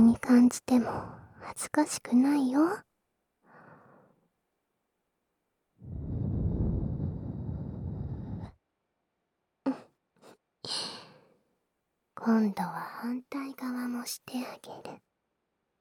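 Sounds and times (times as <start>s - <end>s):
speech: 0.2s - 2.9s, 12.2s - 15.1s
warm breath blown into the ear: 5.8s - 8.6s.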